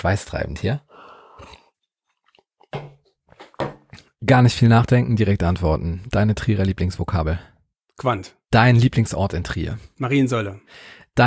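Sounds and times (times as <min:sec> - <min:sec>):
speech: 0:00.0 - 0:01.6, 0:04.2 - 0:11.2
person sipping and swallowing water from a glass: 0:00.9 - 0:02.7.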